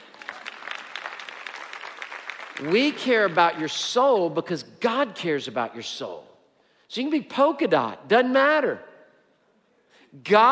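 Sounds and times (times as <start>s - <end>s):
church congregation applauding: 0.0s - 4.0s
speech: 2.6s - 6.3s, 6.9s - 8.9s, 10.1s - 10.4s.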